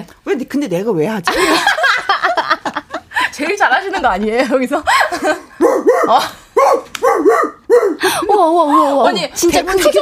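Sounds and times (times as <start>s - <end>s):
speech: 0.4s - 1.8s, 3.4s - 6.4s, 8.4s - 10.0s
laughter: 1.3s - 5.5s
person imitating a big dog barking: 5.6s - 8.1s.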